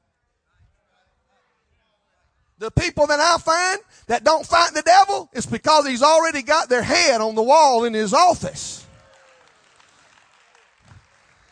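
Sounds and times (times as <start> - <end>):
speech: 2.6 - 8.8
small handful of people clapping: 8.3 - 11.4.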